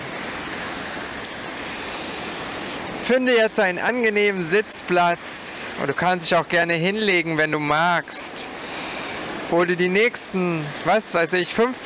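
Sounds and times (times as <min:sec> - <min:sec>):
wind hissing at the seashore: 0:00.0 - 0:03.1, 0:08.4 - 0:10.2
ocean surf rushing at the seashore: 0:00.0 - 0:11.8
speech: 0:03.1 - 0:08.5, 0:09.5 - 0:11.8.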